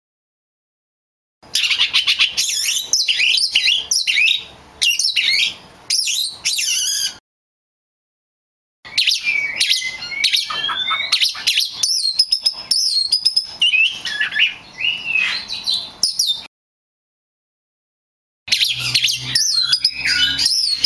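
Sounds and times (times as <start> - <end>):
magpie robin bird singing: 1.4 - 7.2, 8.9 - 16.5, 18.5 - 20.8.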